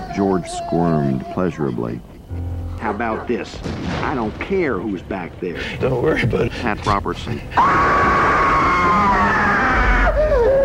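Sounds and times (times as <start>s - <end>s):
speech: 0.2s - 2.1s, 2.8s - 8.1s
man screaming loudly: 7.5s - 10.6s.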